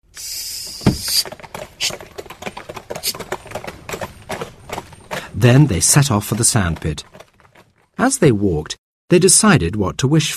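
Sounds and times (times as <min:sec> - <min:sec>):
pony hooves clip-clopping: 0:00.6 - 0:08.4
pony cart wheels rattling: 0:00.7 - 0:08.2
speech: 0:05.4 - 0:07.2, 0:08.0 - 0:10.3.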